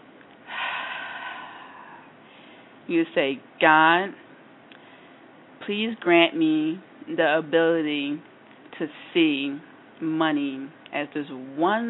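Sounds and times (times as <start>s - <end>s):
deep breath in: 0.5s - 2.7s
speech: 2.9s - 4.2s, 5.6s - 11.8s.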